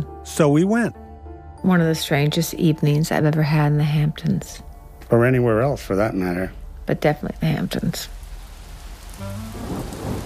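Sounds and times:
speech: 0.3s - 1.0s, 1.6s - 8.2s
heavy rain pouring in the Hamptons: 5.2s - 10.2s
low rumble of thunder: 5.8s - 10.2s.

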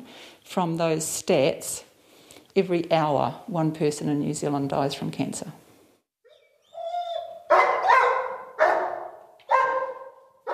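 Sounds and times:
speech: 0.5s - 1.9s, 2.6s - 5.6s
dog whining: 6.2s - 10.5s
dog barking: 7.1s - 10.5s.

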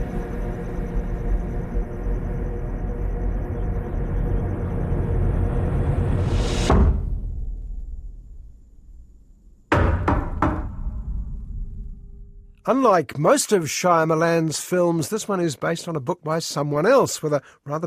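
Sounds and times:
deep rumble in a film trailer: 0.0s - 9.7s, 10.3s - 12.6s
sharp knocks on a cabin door: 9.7s - 11.0s
heavy thud in a film trailer: 9.7s - 12.3s
speech: 12.7s - 17.8s.

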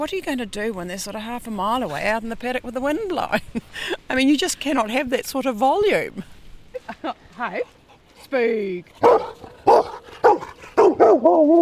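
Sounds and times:
speech: 0.0s - 6.3s, 6.9s - 9.5s, 11.1s - 11.5s
working dog barking: 9.0s - 11.5s.

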